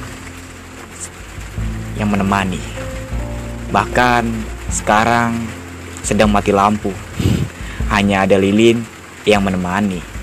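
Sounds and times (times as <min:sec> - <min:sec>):
low rumble: 0:00.0 - 0:09.2
steady rain falling at night: 0:00.0 - 0:10.2
speech: 0:02.0 - 0:03.0, 0:03.7 - 0:10.1.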